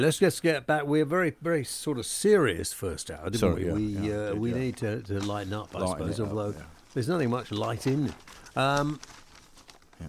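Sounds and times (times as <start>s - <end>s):
speech: 0.0s - 9.2s
paper page being turned: 3.5s - 10.0s.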